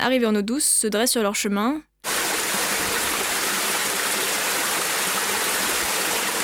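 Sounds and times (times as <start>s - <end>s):
speech: 0.0s - 1.9s
water rushing over a river dam: 2.1s - 6.4s.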